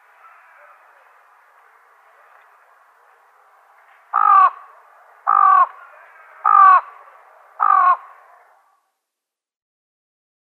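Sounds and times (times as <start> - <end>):
fan-tailed raven cawing: 4.1 - 7.0, 7.6 - 8.8.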